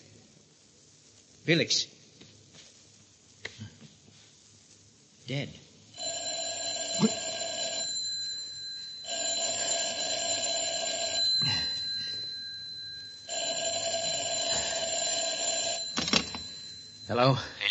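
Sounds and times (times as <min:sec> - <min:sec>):
speech: 0:01.5 - 0:02.0, 0:05.3 - 0:05.6, 0:17.1 - 0:17.7
old-style telephone bell ringing: 0:06.0 - 0:17.6.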